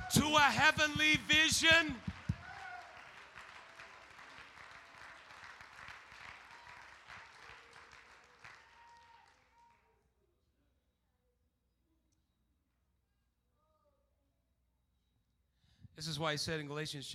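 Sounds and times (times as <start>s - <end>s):
standing crowd clapping hands: 0.0s - 9.8s
speech: 0.1s - 2.1s, 16.0s - 17.1s.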